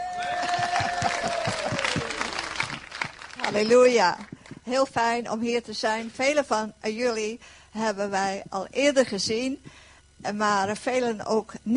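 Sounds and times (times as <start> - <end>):
audience clapping: 0.0 - 4.6
laughter: 0.1 - 2.8
speech: 3.5 - 11.7.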